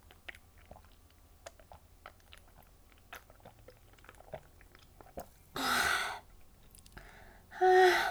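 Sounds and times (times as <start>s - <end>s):
chewing and biting on food: 0.0s - 5.5s
breathy exhales: 7.0s - 8.1s.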